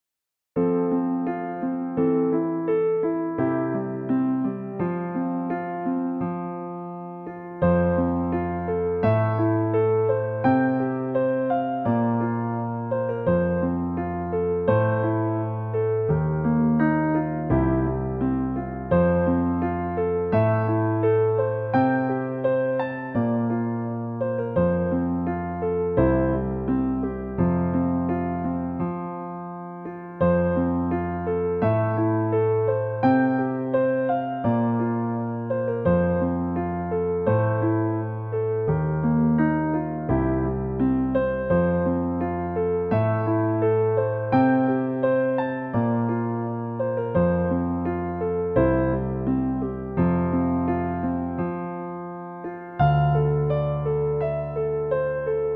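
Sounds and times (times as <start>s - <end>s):
piano: 0.0s - 55.5s.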